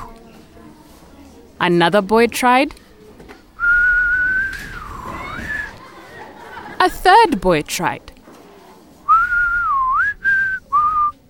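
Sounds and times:
speech: 1.6 - 2.8, 6.8 - 8.1
loud human whistle: 3.6 - 5.8, 9.1 - 11.2
laughter: 5.0 - 7.4.

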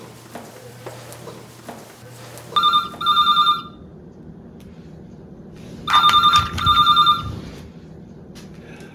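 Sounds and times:
low hum: 0.0 - 8.9
telephone ringing with incoming collect call: 2.6 - 3.8, 5.9 - 7.4.

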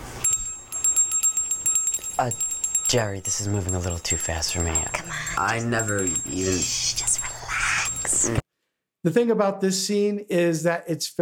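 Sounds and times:
cracked solid-brass bell ringing: 0.2 - 8.4
speech: 2.2 - 7.3, 9.0 - 11.2.

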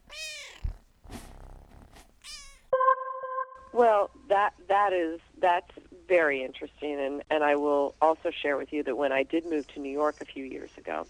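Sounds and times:
rough rumbling purr-like sound: 0.0 - 2.2
cat meowing: 0.0 - 2.7
speech: 3.8 - 11.0.

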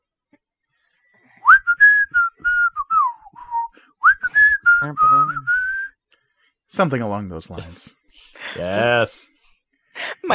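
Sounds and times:
guide whistling a lively tune while walking down a path: 1.4 - 6.0
speech: 4.8 - 5.6, 6.7 - 9.4.

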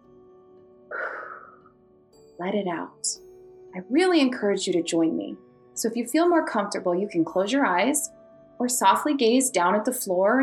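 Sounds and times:
deep inhale through the nose during a guided relaxation exercise: 0.9 - 1.6
speech: 2.4 - 10.4.

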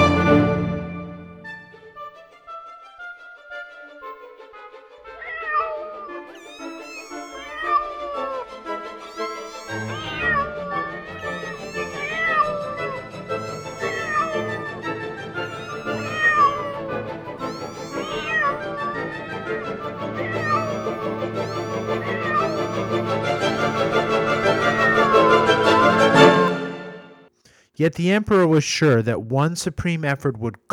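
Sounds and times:
cat meowing and yowling: 0.1 - 0.5, 4.0 - 26.5
speech: 27.8 - 30.7.

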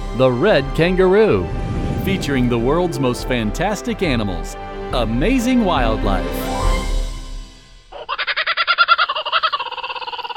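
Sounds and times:
speech: 0.2 - 6.6
laughing kookaburra laughing call: 7.9 - 10.3.

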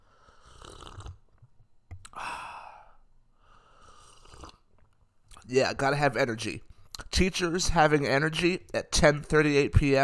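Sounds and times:
slurping sips from a hot drink: 0.1 - 1.2, 3.7 - 4.7
speech: 5.5 - 10.0.

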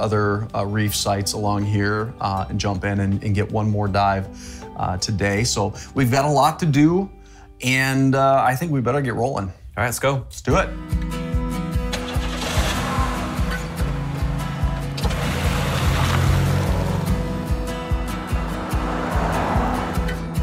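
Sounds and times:
speech: 0.0 - 11.2
rented motorboat engine droning in Largrith Sound mangrove channels: 12.1 - 20.3.

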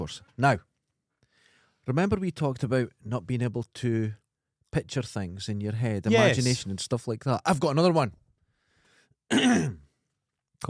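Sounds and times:
speech: 0.0 - 0.7, 1.8 - 8.2, 9.3 - 9.8
faint breathing: 1.2 - 1.9, 8.4 - 9.2
throat-clearing cough: 9.3 - 9.9.

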